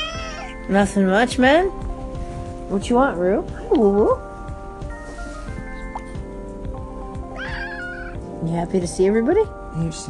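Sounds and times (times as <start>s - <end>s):
cat meowing: 0.0s - 0.6s, 7.3s - 8.2s
speech: 0.7s - 1.9s, 2.7s - 4.3s, 8.4s - 10.0s.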